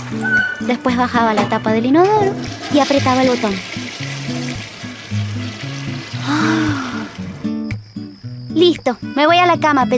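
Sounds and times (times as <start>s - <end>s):
bathroom washbasin tap running: 0.0s - 7.4s
speech: 0.1s - 4.4s, 8.6s - 9.9s.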